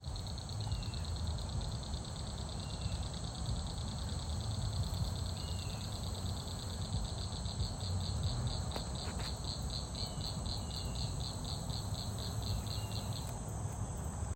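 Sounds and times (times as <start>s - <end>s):
frog or cricket calling: 0.0s - 13.4s
background birds singing: 5.3s - 6.0s, 10.0s - 11.2s, 12.2s - 13.3s.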